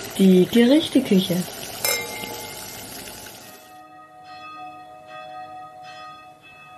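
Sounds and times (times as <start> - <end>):
speech: 0.2 - 1.6
church bells ringing: 3.8 - 6.7.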